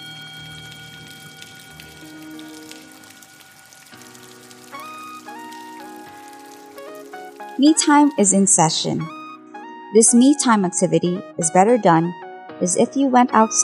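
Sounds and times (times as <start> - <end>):
steady rain pattering: 0.0 - 8.6
speech: 7.6 - 9.2, 9.9 - 13.6.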